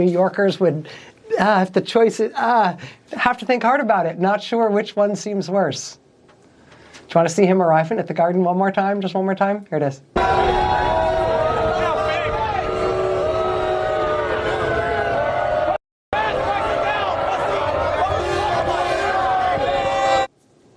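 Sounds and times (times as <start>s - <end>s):
speech: 0.0s - 6.0s, 7.1s - 11.1s
huge indoor arena crowd booing and jeering: 10.2s - 20.3s.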